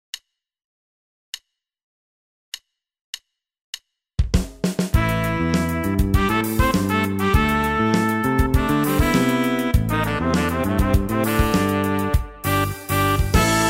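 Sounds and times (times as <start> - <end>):
pop horns: 4.9 - 13.6.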